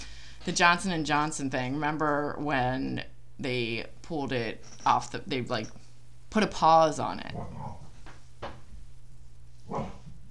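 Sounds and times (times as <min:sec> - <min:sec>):
steady low hum: 0:00.0 - 0:10.2
speech: 0:00.4 - 0:07.8
female dog growling at the floor: 0:07.2 - 0:08.0, 0:09.6 - 0:10.2.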